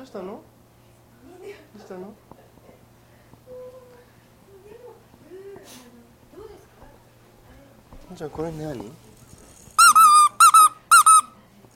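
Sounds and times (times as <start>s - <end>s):
speech: 0.0s - 0.5s, 1.2s - 2.4s, 8.1s - 9.0s
squeaky baby toy squeezed: 9.8s - 11.3s.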